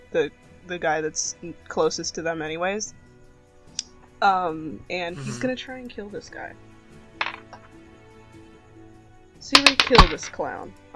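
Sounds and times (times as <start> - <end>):
speech: 0.1 - 3.0, 4.2 - 6.7, 9.4 - 10.9
dice flying out of hand and clattering: 7.2 - 7.7, 9.5 - 10.5.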